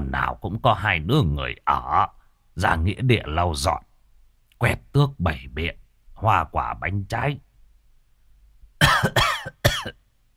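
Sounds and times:
speech: 0:00.1 - 0:03.9, 0:04.6 - 0:07.5, 0:08.8 - 0:10.0
harsh coughs from a person with a seasonal cough: 0:08.8 - 0:10.0.

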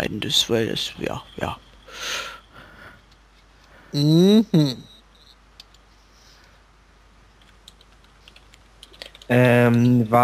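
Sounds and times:
speech: 0:00.0 - 0:02.4, 0:03.9 - 0:04.9, 0:09.3 - 0:10.2
steady low hum: 0:00.0 - 0:10.2
faint computer keyboard typing: 0:07.4 - 0:10.0.

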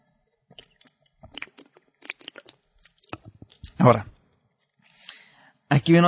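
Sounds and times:
person sipping water: 0:00.5 - 0:03.8
gulping water: 0:00.6 - 0:03.9
speech: 0:03.8 - 0:04.1, 0:05.8 - 0:06.0.

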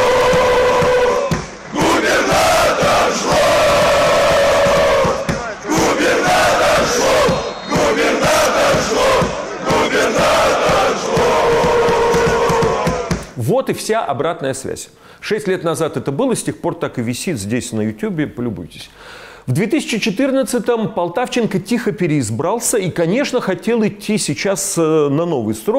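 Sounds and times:
massed football fans chanting at a televised stadium match: 0:00.0 - 0:13.2
speech: 0:13.7 - 0:25.7.

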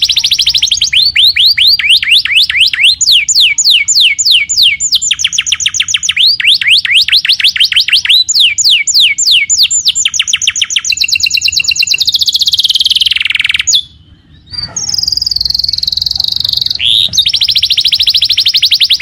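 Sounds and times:
canary singing: 0:00.0 - 0:19.0.

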